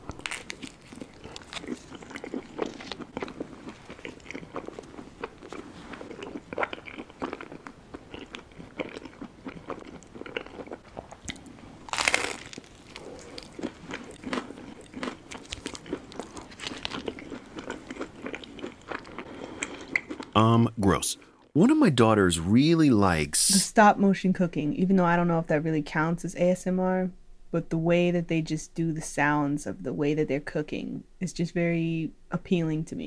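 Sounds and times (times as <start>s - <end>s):
person eating, crunching: 0.0s - 20.4s
person moist chewing: 0.4s - 11.5s, 12.5s - 20.2s
speech: 20.4s - 33.0s.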